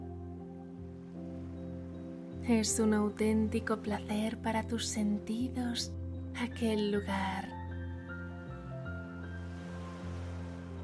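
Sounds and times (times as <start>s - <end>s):
gentle musical tones: 0.0s - 10.8s
speech: 2.4s - 7.6s
ocean surf rolling onto the shore: 9.4s - 10.8s.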